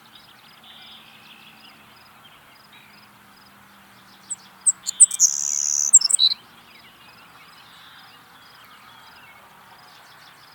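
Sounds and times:
Savannah sparrow Passerculus sandwichensis singing: 0:00.0 - 0:10.5.

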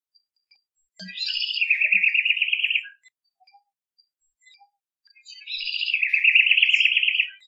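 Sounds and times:
House wren Troglodytes aedon chatter calls: 0:01.0 - 0:03.0, 0:05.3 - 0:07.4.

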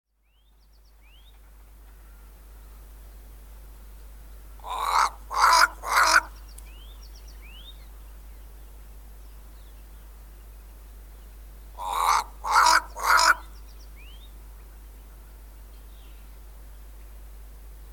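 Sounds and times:
Cape crow Corvus capensis cawing: 0:04.6 - 0:06.3, 0:11.8 - 0:13.5.

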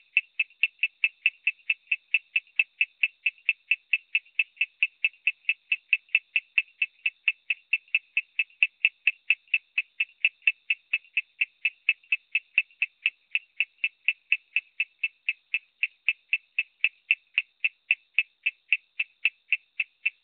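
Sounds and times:
Coorg yellow bush frog Raorchestes luteolus giving chirping clicks: 0:00.0 - 0:20.2.

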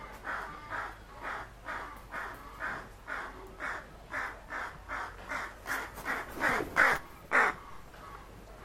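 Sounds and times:
steady background hum: 0:00.0 - 0:08.6
southern crested caracara harsh raspy grating calls at a wildlife sanctuary: 0:00.2 - 0:07.8.

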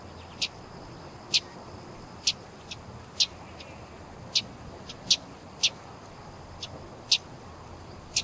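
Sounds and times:
Common yellowthroat (Geothlypis trichas) calling with brisk high clicky chips: 0:00.2 - 0:00.6, 0:02.2 - 0:05.8, 0:08.0 - 0:08.2.

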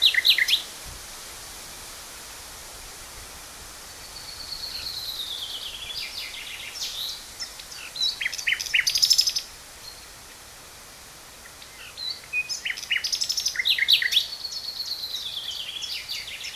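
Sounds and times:
common nightingale Luscinia megarhynchos singing: 0:00.0 - 0:00.7, 0:03.8 - 0:10.4, 0:11.4 - 0:16.5.

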